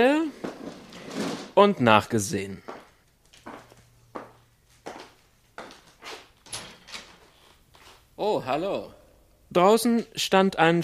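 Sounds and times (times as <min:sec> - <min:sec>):
speech: 0:01.6 - 0:02.7, 0:08.4 - 0:10.8
office anteroom door being opened: 0:06.0 - 0:07.4.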